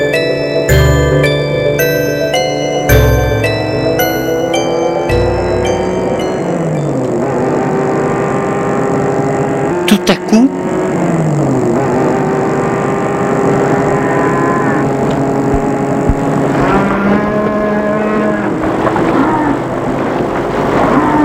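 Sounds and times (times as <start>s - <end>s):
idling vehicles rumbling: 0.0s - 21.2s
cows mooing on a highway: 6.6s - 21.2s.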